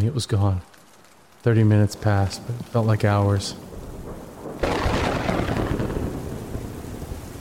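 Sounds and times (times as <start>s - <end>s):
speech: 0.0s - 0.8s, 1.4s - 3.7s
heavy rain pouring: 0.0s - 7.3s
loud crack of thunder: 3.6s - 7.3s.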